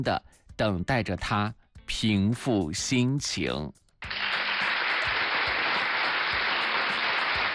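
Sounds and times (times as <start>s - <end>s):
speech: 0.0s - 3.8s
applause from many hands: 4.0s - 7.5s.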